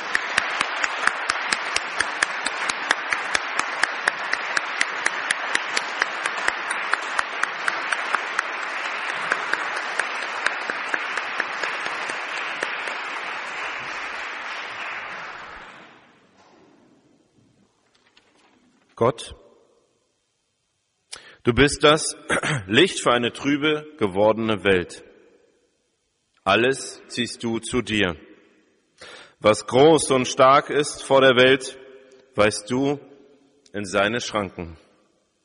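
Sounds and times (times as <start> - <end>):
large audience applauding after a concert performance: 0.0 - 16.3
speech: 19.0 - 19.4, 21.5 - 25.1, 26.4 - 28.3, 29.4 - 31.8, 32.4 - 33.1, 33.7 - 34.8.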